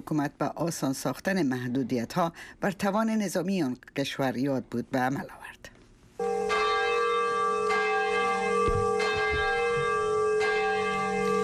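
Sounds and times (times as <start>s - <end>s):
speech: 0.1s - 5.6s
bell tolling at a memorial ceremony in Nagasaki Japan: 6.2s - 11.4s.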